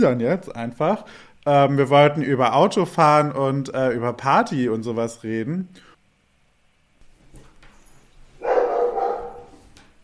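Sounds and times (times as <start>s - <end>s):
speech: 0.0s - 5.9s
dog giving a drawn-out bark: 8.4s - 9.6s.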